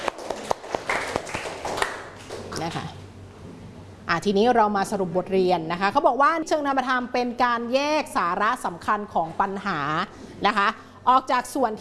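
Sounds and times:
class of students clapping hands for a classmate: 0.0 - 2.9
speech: 2.6 - 3.0, 4.1 - 11.7.

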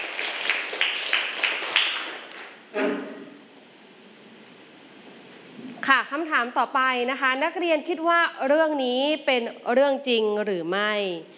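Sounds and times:
students clapping hands in a classroom: 0.0 - 2.6
speech: 5.8 - 11.3.

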